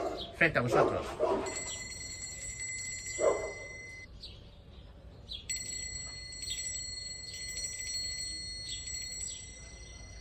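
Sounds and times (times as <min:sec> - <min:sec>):
speech: 0:00.4 - 0:01.8
small bell ringing for a stereo test: 0:01.5 - 0:04.1, 0:05.5 - 0:10.1.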